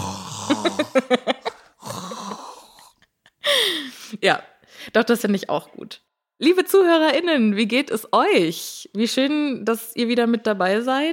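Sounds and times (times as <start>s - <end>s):
voice imitating open-mouthed snoring: 0.0s - 3.0s
breathy sound: 0.0s - 4.9s
speech: 0.5s - 1.2s, 4.2s - 11.1s
laughter: 0.5s - 1.7s.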